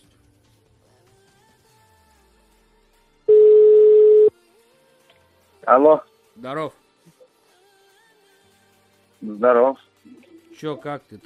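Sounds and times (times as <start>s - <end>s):
loud steady mid-pitched telephone dialing beep: 3.3s - 4.3s
speech: 5.7s - 6.8s, 9.2s - 11.2s.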